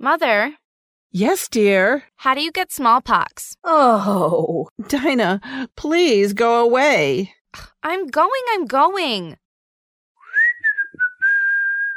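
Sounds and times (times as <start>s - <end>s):
speech: 0.0s - 9.4s
person whistling a short melodic phrase: 10.2s - 11.9s.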